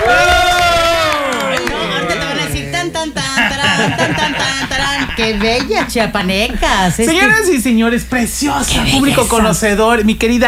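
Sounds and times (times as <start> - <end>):
studio guests shouting and cheering: 0.0 - 5.2
laughter: 1.3 - 6.2
speech: 5.2 - 10.4.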